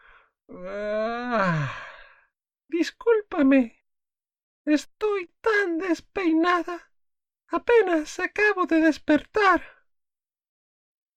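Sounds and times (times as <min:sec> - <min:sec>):
speech: 0:00.5 - 0:01.0, 0:02.8 - 0:03.8, 0:04.7 - 0:06.9, 0:07.5 - 0:09.8
drawn-out human yawn: 0:00.5 - 0:02.0.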